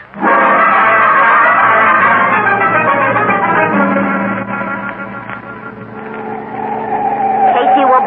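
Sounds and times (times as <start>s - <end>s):
car roaring at speed through turns: 0.0s - 8.0s
car tires squealing and skidding: 0.2s - 8.0s
voices: 6.7s - 8.0s.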